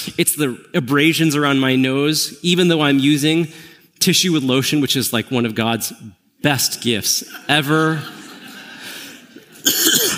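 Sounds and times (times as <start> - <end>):
speech: 0.2 - 8.2
laughter: 7.2 - 9.6
sick person coughing harshly: 9.6 - 10.1.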